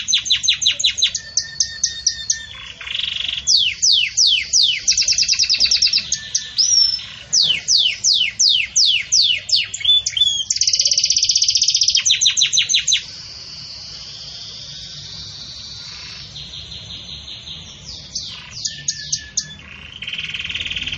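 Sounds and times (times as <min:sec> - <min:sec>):
Belgian canary singing campainha song: 0:00.0 - 0:20.9.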